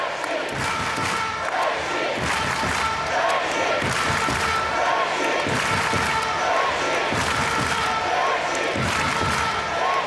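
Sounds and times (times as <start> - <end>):
packed ice hockey arena crowd cheering for the Czech team: 0.0 - 10.0.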